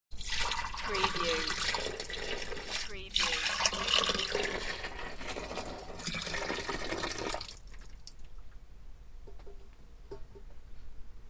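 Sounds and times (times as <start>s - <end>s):
sink filled with water from a kettle: 0.1s - 8.3s.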